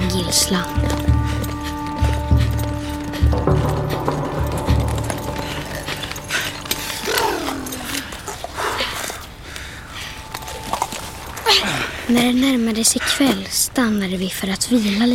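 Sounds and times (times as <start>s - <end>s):
low musical drone: 0.0s - 8.7s, 9.7s - 12.3s
horse hooves clip-clopping while riding: 0.0s - 9.3s, 10.0s - 11.5s
speech: 0.2s - 1.1s, 12.1s - 15.1s.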